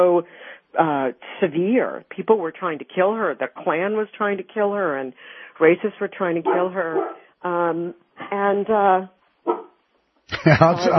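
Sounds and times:
speech: 0.0 - 9.6, 10.3 - 10.9
dog barking in drawn-out tonal bursts: 6.4 - 7.3, 9.4 - 9.8
laughter: 10.3 - 10.9.

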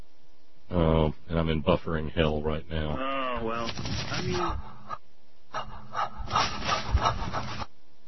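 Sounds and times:
speech: 1.1 - 4.7, 6.3 - 7.7
rough rhythmic heavy breathing with raspy panting breaths: 4.4 - 7.7.

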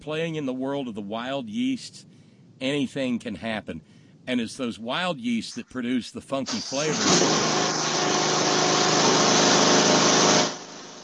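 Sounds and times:
speech: 0.0 - 7.8
small lawnmower engine buzzing: 6.5 - 11.0.

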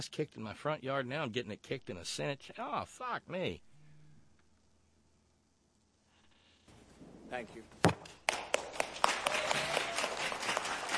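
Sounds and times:
speech: 0.0 - 3.7, 7.3 - 8.0
audience of anti-vaxxers clapping: 8.0 - 10.9.

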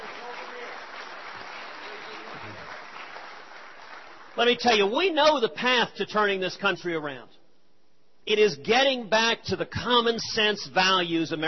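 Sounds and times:
audience clapping at a speech: 0.0 - 5.4
speech: 4.4 - 7.3, 8.3 - 11.4.

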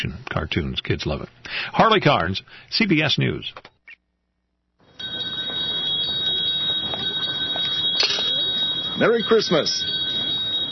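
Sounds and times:
speech: 0.0 - 3.7, 9.0 - 10.0
handbell ringing for a Christmas charity collection: 5.0 - 10.7.

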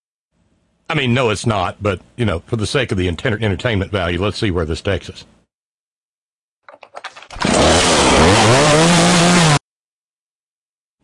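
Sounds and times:
speech: 0.9 - 5.4
chainsaw pull-starting and running: 7.3 - 9.6.

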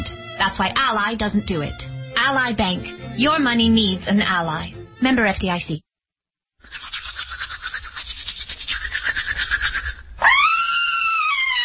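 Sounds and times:
speech: 0.4 - 5.8
woman brushing teeth with a toothbrush: 6.6 - 10.0
woman screaming: 10.2 - 11.6.

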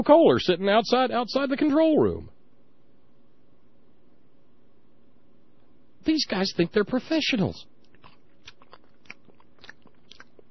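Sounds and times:
speech: 0.0 - 2.4, 6.0 - 7.7
mouth smacking: 7.8 - 10.5
wet crunchy chewing against the microphone: 7.8 - 10.5.

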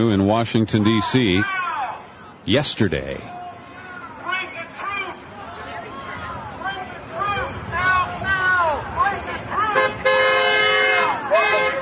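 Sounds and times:
speech: 0.0 - 1.6, 2.4 - 3.4
crowd of protesters at a sit-in shouting and cheering in Washington D.C.: 0.8 - 2.4, 3.2 - 11.7
passing car horn blast in support of protesters: 9.7 - 11.7.

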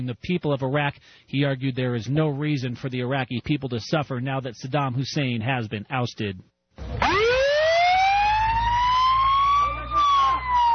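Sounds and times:
speech: 0.0 - 7.3
ambulance siren wailing: 6.8 - 10.7.

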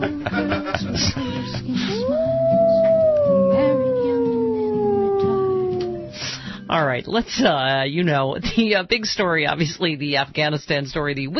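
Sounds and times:
laughter: 0.0 - 2.1
person imitating a wolf howl: 1.3 - 6.2
speech: 7.0 - 11.3.

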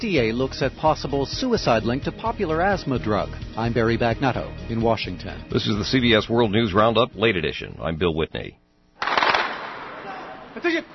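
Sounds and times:
speech: 0.0 - 8.6, 10.6 - 10.9
gunfire as forces battle militiamen on city outskirts: 9.0 - 10.3.

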